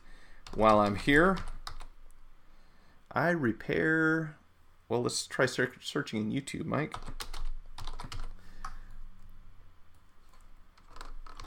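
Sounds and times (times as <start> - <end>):
typing on a Windows keyboard used with a Mac: 0.4 - 1.9, 6.9 - 8.8, 10.3 - 11.4
speech: 0.6 - 1.5, 3.1 - 7.3.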